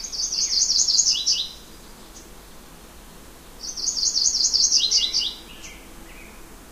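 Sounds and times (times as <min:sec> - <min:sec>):
yellow-rumped warbler singing: 0:00.0 - 0:02.3, 0:03.6 - 0:06.5.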